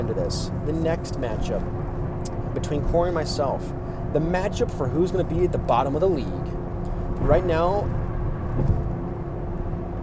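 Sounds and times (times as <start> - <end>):
speech: 0.0 - 2.0, 2.6 - 6.6, 7.2 - 8.0
car being driven with engine and road rumble: 0.0 - 10.0.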